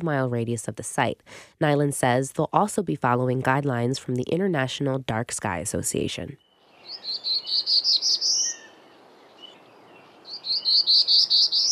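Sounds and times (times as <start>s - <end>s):
speech: 0.0s - 6.4s
black-throated blue warbler song in Plymouth County, Massachusetts: 6.3s - 11.7s.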